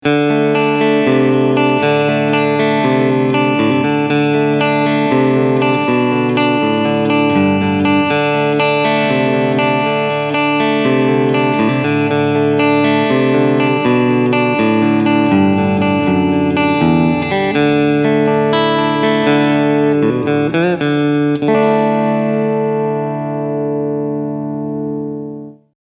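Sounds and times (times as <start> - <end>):
clean guitar picking on middle SC: 0.0 - 25.7.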